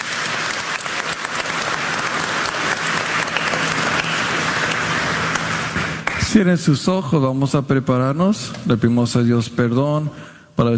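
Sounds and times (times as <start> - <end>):
audience at a Catholic Mass for the Solemnity of the Holy Trinity applauding: 0.0 - 6.5
speech: 6.3 - 10.7.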